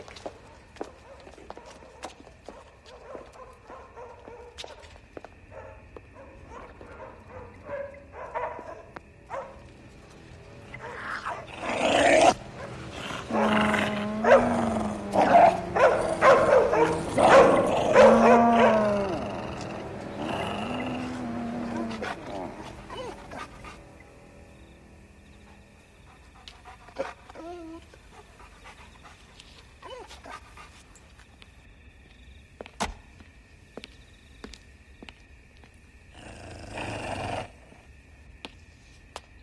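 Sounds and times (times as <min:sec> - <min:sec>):
dogs barking and howling: 0:00.2 - 0:04.9, 0:05.5 - 0:24.2, 0:25.3 - 0:31.0.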